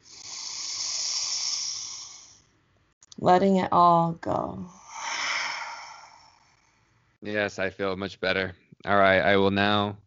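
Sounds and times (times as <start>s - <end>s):
long steady deep inhalation: 0.0s - 2.4s, 4.7s - 7.0s
speech: 3.2s - 4.8s, 7.2s - 10.0s.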